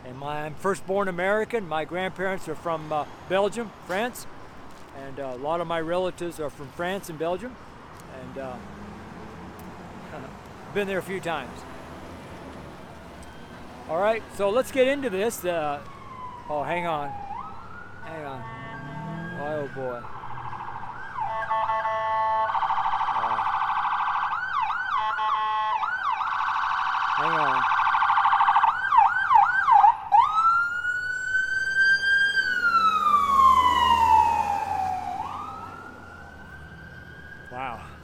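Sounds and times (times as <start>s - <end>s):
speech: 0.2s - 4.4s, 5.0s - 8.8s, 10.1s - 11.7s, 13.9s - 15.9s, 16.5s - 17.2s, 18.0s - 18.6s, 19.4s - 20.1s
emergency vehicle sirens yelping and wailing on a street: 11.1s - 38.0s.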